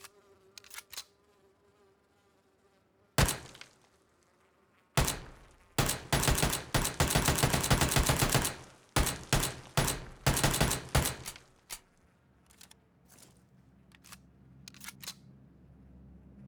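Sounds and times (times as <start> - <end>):
Uzi submachine gun single shot: 3.2 - 3.8, 5.0 - 11.8.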